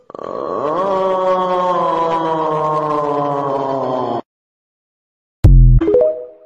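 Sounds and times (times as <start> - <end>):
person groaning ugh: 0.0 - 4.2.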